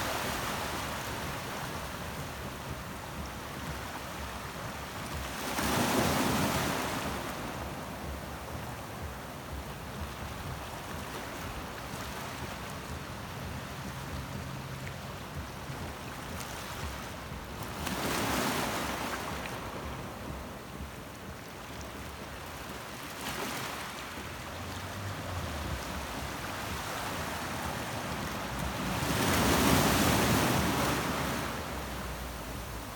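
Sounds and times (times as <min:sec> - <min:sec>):
surf washing against a rocky Pacific shore in Quepos Costa Rica: 0:00.0 - 0:32.9
waves breaking on a rocky Pacific shore in Costa Rica: 0:00.0 - 0:32.9.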